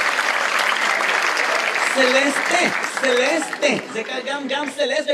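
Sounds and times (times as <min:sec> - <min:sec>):
audience applause: 0:00.0 - 0:05.0.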